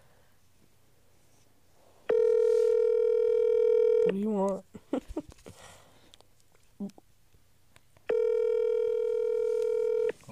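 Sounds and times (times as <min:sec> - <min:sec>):
steady loud electronic phone ringing tone: 0:02.1 - 0:04.1, 0:08.1 - 0:10.2
speech: 0:04.1 - 0:05.0.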